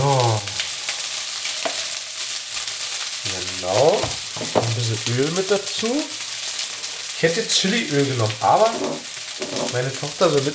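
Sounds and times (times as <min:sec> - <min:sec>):
rice stir-frying in a pan Chinese style: 0:00.0 - 0:10.5
speech: 0:05.0 - 0:06.2, 0:07.2 - 0:10.5
rough scrape of stirring rice in a pan: 0:08.6 - 0:09.8.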